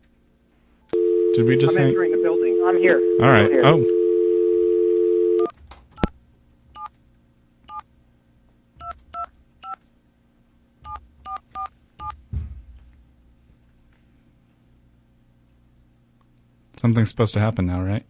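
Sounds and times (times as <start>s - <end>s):
telephone dial tone: 1.0s - 5.5s
speech: 1.4s - 4.0s, 16.8s - 18.0s.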